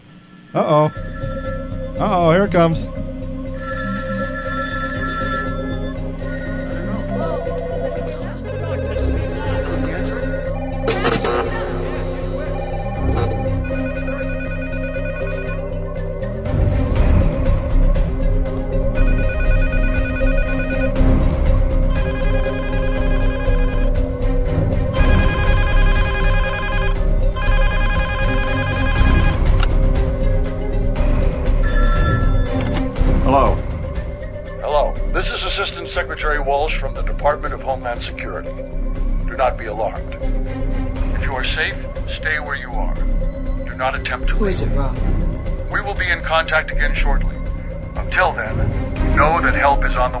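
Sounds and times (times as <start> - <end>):
telephone ringing with a bright electronic trill: 0.4 - 8.4, 10.8 - 16.2, 19.0 - 21.2, 21.9 - 24.2, 24.9 - 30.1, 31.4 - 33.0
steady music: 0.4 - 50.1
speech: 0.5 - 1.2, 2.0 - 3.0, 35.6 - 47.3, 48.0 - 50.1.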